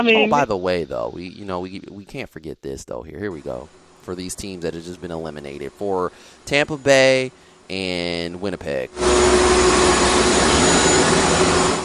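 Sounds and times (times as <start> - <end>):
speech: 0.0 - 10.4
vacuum cleaner roaring with a faint high whine: 4.4 - 11.8.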